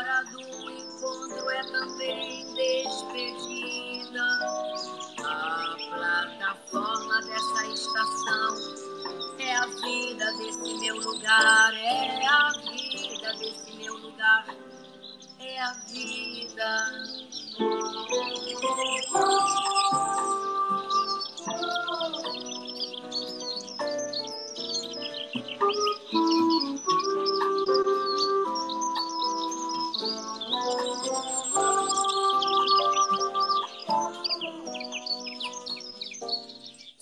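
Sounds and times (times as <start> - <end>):
dense chorus of birds singing and chirping: 0.0 - 37.0.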